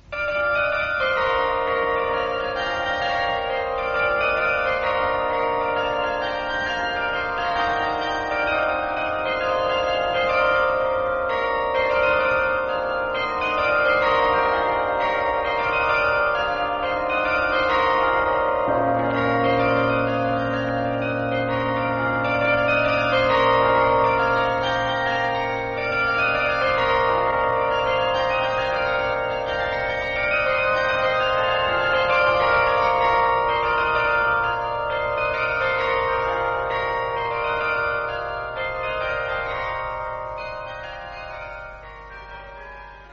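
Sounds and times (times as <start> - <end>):
bells ringing: 0.0 - 43.1.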